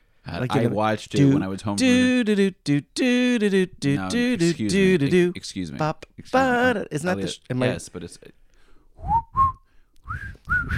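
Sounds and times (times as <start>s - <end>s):
speech: 0.3s - 8.4s, 10.1s - 10.7s
person whistling a short tune: 9.0s - 10.7s.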